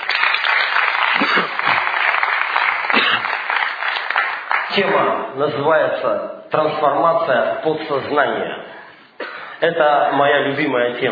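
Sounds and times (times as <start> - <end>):
sustained crowd applause of many hands clapping: 0.0 - 5.1
speech: 4.8 - 8.8, 9.6 - 11.0.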